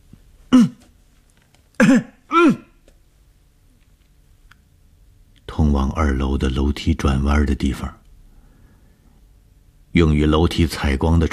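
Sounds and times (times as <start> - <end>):
man coughing loudly, gritting his teeth: 0.5 - 0.9, 1.8 - 2.8
speech: 1.9 - 2.6, 6.0 - 8.0, 10.0 - 11.3.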